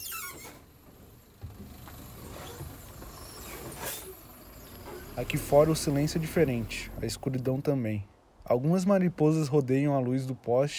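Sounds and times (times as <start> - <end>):
brief hiss inside a city bus: 0.0 - 7.5
mechanical clunks inside a city bus: 0.0 - 7.6
city bus engine drone while slowing to a stop: 0.0 - 7.7
speech: 5.2 - 10.7.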